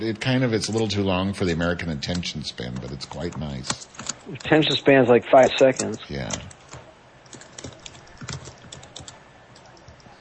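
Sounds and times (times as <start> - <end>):
speech: 0.0 - 6.6
soft hiss: 0.0 - 10.1
typing on a computer keyboard: 2.7 - 4.5, 5.8 - 10.1.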